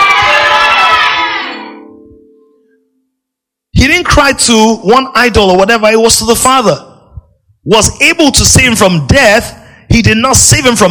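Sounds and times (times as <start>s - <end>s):
large audience screaming and cheering: 0.0s - 1.8s
speech: 4.0s - 6.9s, 7.6s - 10.8s.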